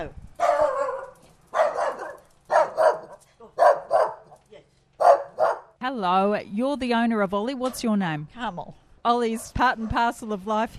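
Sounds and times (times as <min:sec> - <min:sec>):
speech: 0:00.0 - 0:00.2, 0:06.0 - 0:10.7
dog barking excitedly: 0:00.4 - 0:04.4, 0:05.0 - 0:05.8.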